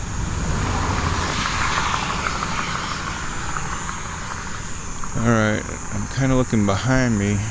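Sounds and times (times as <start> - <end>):
racing motorcycle engines roaring as bikes zip past: 0.0 - 5.2
speech: 5.3 - 7.4.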